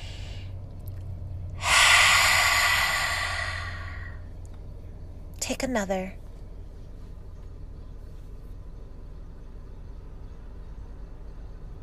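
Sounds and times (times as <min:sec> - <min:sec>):
deep breath exhaled through an open mouth: 0:00.0 - 0:00.5, 0:01.6 - 0:04.3
speech: 0:05.5 - 0:06.2.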